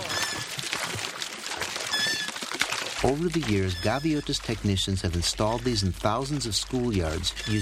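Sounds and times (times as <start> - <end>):
faint high squeaky tones: 0.0 - 0.6, 1.9 - 2.4, 3.4 - 4.6, 7.3 - 7.6
water gushing from a pipe into a cement tank: 0.0 - 7.6
speech: 3.0 - 7.6.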